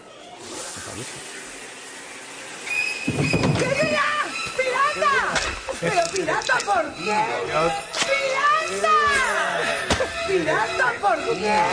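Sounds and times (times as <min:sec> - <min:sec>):
shower water running: 0:00.0 - 0:06.8
speech: 0:01.0 - 0:01.4, 0:05.8 - 0:11.7.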